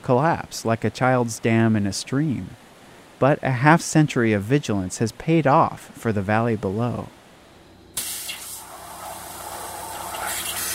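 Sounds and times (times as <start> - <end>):
speech: 0.0 - 2.6, 3.2 - 7.2
waterjet cutter forcing water mixed with powdered garnet through a hair-thin hole onto metal: 8.0 - 10.7.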